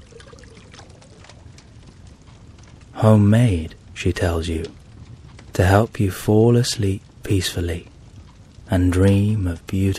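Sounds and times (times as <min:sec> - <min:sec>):
hot drink poured from a pot hung above a fire: 0:00.0 - 0:01.5
speech: 0:03.0 - 0:04.8, 0:05.6 - 0:07.9, 0:08.7 - 0:09.9.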